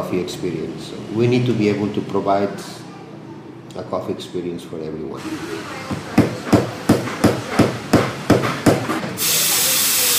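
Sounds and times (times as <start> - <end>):
speech: 0.1 - 2.8, 3.8 - 6.2
sharp knocks: 6.2 - 9.1
espresso machine steam wand hissing: 9.2 - 10.1.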